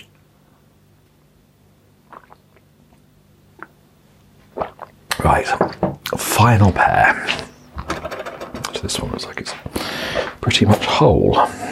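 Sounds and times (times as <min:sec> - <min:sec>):
sipping tea from a cup: 0:02.0 - 0:02.6
speech: 0:05.2 - 0:07.4, 0:08.8 - 0:11.6.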